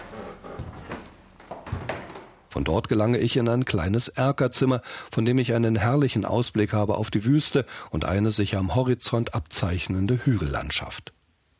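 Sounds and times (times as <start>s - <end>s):
old sturdy wooden stair boards creaking and thudding underfoot: 0.0s - 2.6s
speech: 2.5s - 11.2s.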